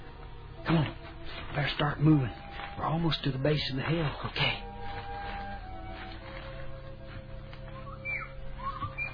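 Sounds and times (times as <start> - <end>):
speech: 1.6 - 4.6
short high whistled bird-like calls: 7.7 - 9.1.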